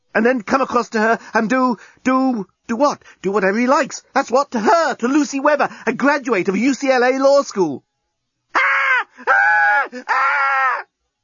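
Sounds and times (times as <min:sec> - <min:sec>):
speech: 0:00.2 - 0:07.9, 0:08.5 - 0:10.5
woman screaming: 0:08.5 - 0:10.9.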